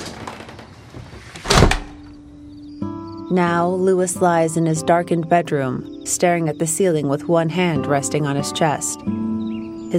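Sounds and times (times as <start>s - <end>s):
front door with a screen being shut: 0.0s - 2.2s
speech: 3.3s - 9.3s.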